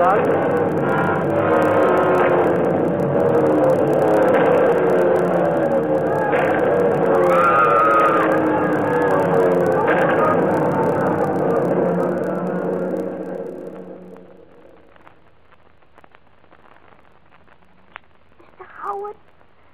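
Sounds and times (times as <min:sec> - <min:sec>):
speech: 0:00.0 - 0:00.9
loud unbroken warplane engine roar with rising and falling whines: 0:00.0 - 0:14.4
German warplanes diving toward a road: 0:00.0 - 0:14.8.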